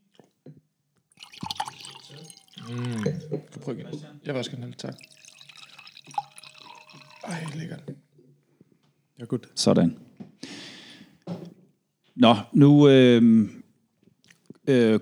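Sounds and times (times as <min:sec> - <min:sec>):
soft clinks and taps of glass: 0:01.2 - 0:03.7, 0:04.4 - 0:07.8
wine pouring into a glass: 0:01.2 - 0:07.9
speech: 0:02.7 - 0:05.2, 0:07.3 - 0:08.0, 0:09.2 - 0:10.0, 0:12.2 - 0:13.6, 0:14.7 - 0:15.0.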